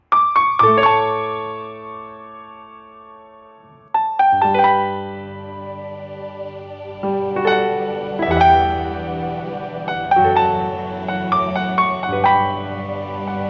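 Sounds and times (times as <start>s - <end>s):
piano played by children: 0.0s - 13.4s.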